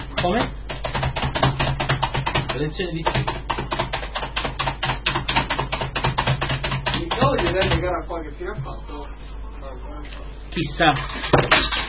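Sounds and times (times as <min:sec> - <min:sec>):
typing on a computer keyboard: 0:00.0 - 0:07.9
speech: 0:00.2 - 0:00.6, 0:02.6 - 0:03.4, 0:07.3 - 0:11.8.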